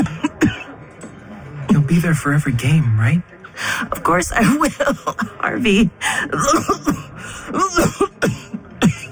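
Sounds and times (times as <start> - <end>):
speech: 1.9 - 8.0
woman coughing in hacking bursts: 4.5 - 9.1.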